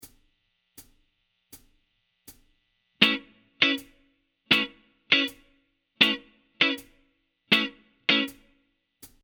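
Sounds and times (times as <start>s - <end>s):
electric guitar: 3.0s - 5.4s, 6.0s - 8.5s.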